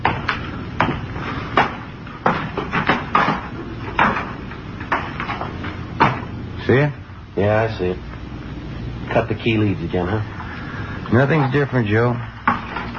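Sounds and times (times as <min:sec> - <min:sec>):
hollow clanking footfalls on ladder rungs: 0:00.0 - 0:06.4, 0:11.4 - 0:12.9
speech: 0:06.7 - 0:08.1, 0:09.1 - 0:10.4, 0:11.1 - 0:12.3.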